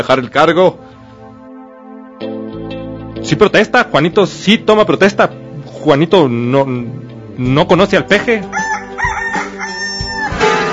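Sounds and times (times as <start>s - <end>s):
speech: 0.0s - 0.8s, 3.2s - 8.7s
rooster crowing: 8.5s - 10.7s.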